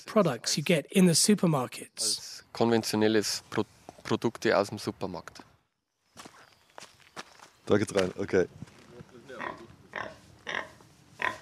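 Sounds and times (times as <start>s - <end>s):
speech: 0.0s - 5.5s, 7.7s - 8.7s
pig grunting on a farm: 9.3s - 11.4s.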